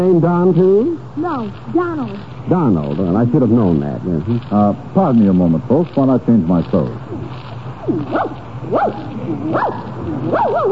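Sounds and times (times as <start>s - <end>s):
speech: 0.0s - 7.1s, 7.9s - 10.7s
small dog barking: 7.9s - 10.7s.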